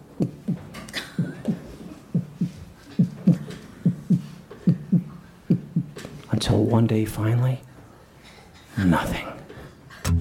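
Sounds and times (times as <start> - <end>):
faint hum: 0.0 - 10.1
low drum thumps in paired heartbeat-like beats: 2.2 - 6.0
speech: 6.4 - 7.7, 8.8 - 9.3.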